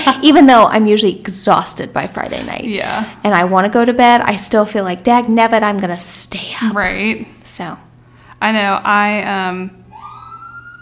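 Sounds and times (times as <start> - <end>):
speech: 0.0 - 9.8
fire department emergency siren wailing: 9.9 - 10.7.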